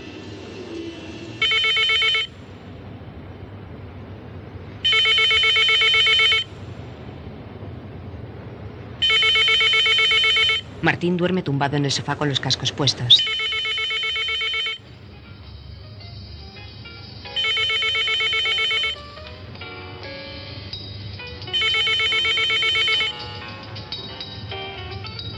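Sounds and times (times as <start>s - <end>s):
low hum: 0.0s - 25.3s
telephone ringing in a studio: 1.4s - 2.3s, 4.8s - 6.5s, 9.0s - 10.7s, 13.2s - 14.9s, 17.3s - 25.3s
speech: 10.8s - 13.4s.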